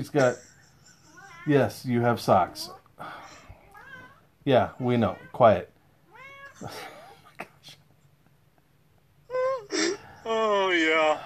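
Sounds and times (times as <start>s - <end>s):
speech: 0.0s - 0.5s, 1.4s - 3.2s, 4.4s - 5.7s, 6.6s - 7.0s, 10.3s - 11.2s
cat meowing: 3.5s - 7.0s.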